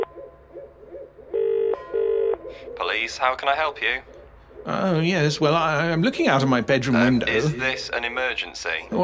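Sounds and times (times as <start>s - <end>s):
large owl on a telegraph pole hooting: 0.1s - 1.5s, 2.4s - 2.9s, 4.0s - 4.9s
speech: 2.9s - 9.0s.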